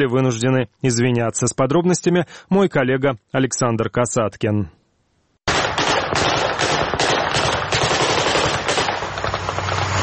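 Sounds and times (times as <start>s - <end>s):
speech: 0.0s - 4.8s
rapid gunfire bursts during military exercises: 5.5s - 9.8s.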